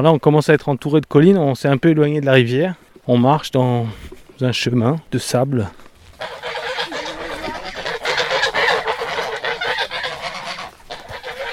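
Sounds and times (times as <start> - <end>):
speech: 0.0 - 6.4
flock of geese honking on a sandy path by a small river: 6.1 - 11.5.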